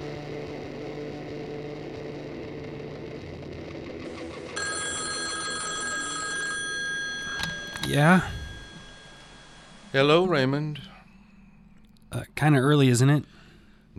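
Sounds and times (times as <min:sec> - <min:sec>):
phone ringing on a cluttered coffee table beside a couch: 0:04.6 - 0:10.1
speech: 0:07.9 - 0:08.4, 0:09.9 - 0:10.9, 0:12.1 - 0:13.4.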